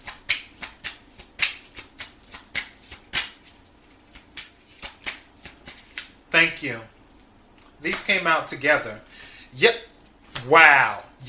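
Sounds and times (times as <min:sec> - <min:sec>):
tarot cards being shuffled for a reading: 0:00.0 - 0:06.2
speech: 0:06.4 - 0:07.0, 0:07.8 - 0:11.2.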